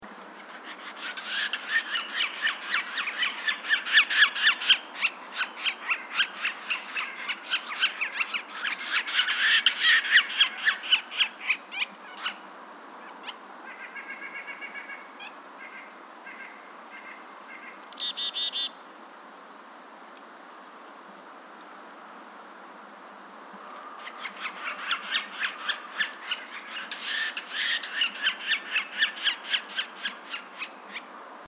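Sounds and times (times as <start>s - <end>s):
Yellow-bellied Sapsucker Sphyrapicus varius: 0.4s - 12.4s, 24.0s - 31.1s.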